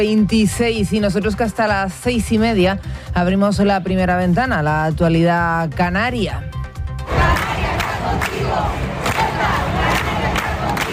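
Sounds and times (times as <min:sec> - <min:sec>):
speech: 0:00.0 - 0:06.6
protest crowd chanting and shouting at demonstration: 0:07.0 - 0:10.9.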